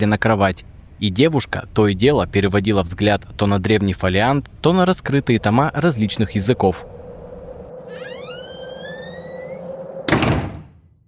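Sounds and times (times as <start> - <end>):
speech: 0.0 - 7.0
steady low hum: 4.0 - 10.3
rising whistling swell: 4.7 - 10.2
door to a room slamming shut: 8.2 - 10.8.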